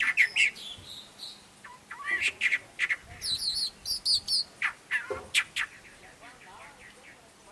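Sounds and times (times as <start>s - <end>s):
long-tailed mockingbird singing: 0.0s - 7.5s.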